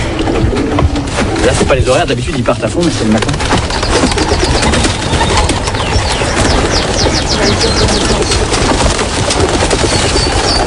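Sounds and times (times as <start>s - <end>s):
many pigeons cooing at a loft: 0.0s - 10.6s
other birds chirping: 0.0s - 10.6s
pigeon wings flapping: 0.0s - 10.6s
speech: 1.7s - 3.6s, 7.5s - 8.3s.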